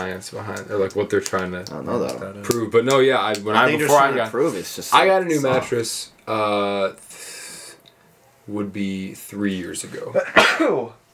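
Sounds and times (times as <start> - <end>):
speech: 0.0 - 7.3, 8.5 - 11.0
sneeze: 10.3 - 10.9.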